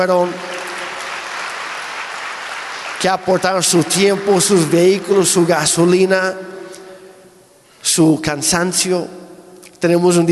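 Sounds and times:
speech: 0.0 - 0.5, 3.0 - 6.6, 7.8 - 10.3
crowd applauding: 0.0 - 6.2.

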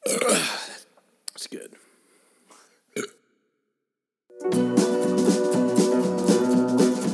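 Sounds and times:
burp after drinking beer: 0.0 - 0.7, 3.0 - 3.2
upbeat music: 4.3 - 7.1.

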